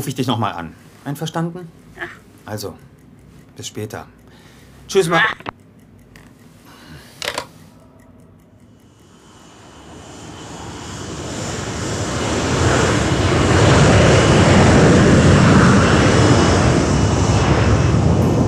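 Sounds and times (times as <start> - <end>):
speech: 0.0 - 2.9, 3.6 - 4.2, 4.9 - 5.6
airplane engine roaring during takeoff heard from a window seat on board: 9.2 - 18.4.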